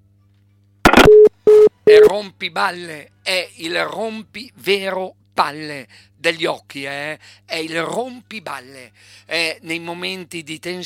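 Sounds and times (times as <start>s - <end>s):
telephone busy signal: 0.9s - 2.1s
speech: 1.9s - 10.8s.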